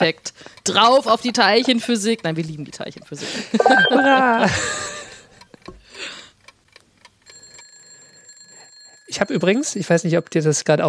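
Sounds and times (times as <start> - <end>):
speech: 0.0 - 4.9, 9.1 - 10.8
laughter: 3.2 - 5.4
quiet alarm clock ringing with faint electronic beeping: 3.6 - 5.1, 7.3 - 10.8.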